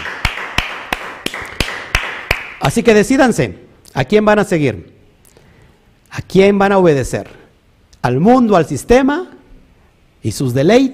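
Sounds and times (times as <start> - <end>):
applause to the Almighty: 0.0 - 2.7
speech: 2.6 - 5.0, 6.1 - 7.4, 8.0 - 9.4, 10.2 - 10.9.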